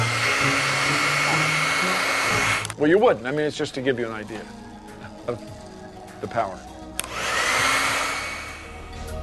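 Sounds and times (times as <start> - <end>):
hair dryer running: 0.0 - 2.8, 7.0 - 9.1
speech: 2.8 - 4.6, 5.3 - 5.6, 6.2 - 6.7.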